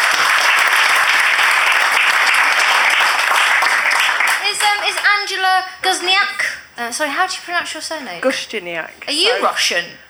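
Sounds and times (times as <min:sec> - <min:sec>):
audience applause: 0:00.0 - 0:06.4
speech: 0:04.9 - 0:10.0.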